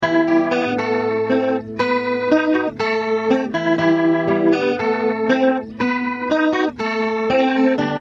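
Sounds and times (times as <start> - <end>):
acoustic guitar through rotosphere: 0.0 - 7.9.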